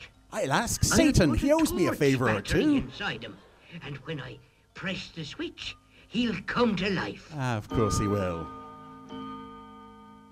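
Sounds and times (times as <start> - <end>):
speech: 0.3 - 9.2
clock chiming: 5.6 - 10.3
sustained bell-like hum: 7.4 - 10.3.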